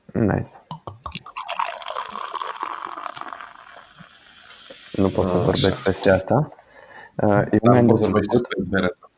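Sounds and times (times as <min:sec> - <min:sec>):
speech: 0:00.2 - 0:00.8, 0:05.0 - 0:06.6, 0:07.2 - 0:09.1
beer pouring with foamy fizzing: 0:00.8 - 0:06.2.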